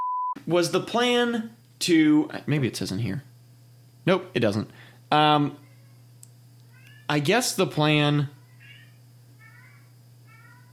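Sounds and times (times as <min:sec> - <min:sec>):
speech: 0:00.4 - 0:03.3, 0:04.0 - 0:05.6, 0:07.1 - 0:08.4
steady low electrical hum: 0:00.4 - 0:10.7
cat yowling: 0:08.4 - 0:10.7.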